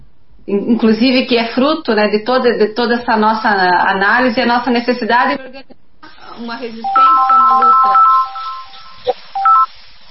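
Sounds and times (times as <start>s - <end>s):
speech: 0.5s - 5.8s, 6.4s - 8.1s
telephone ringing with an incoming call in short electronic tones: 6.8s - 9.7s.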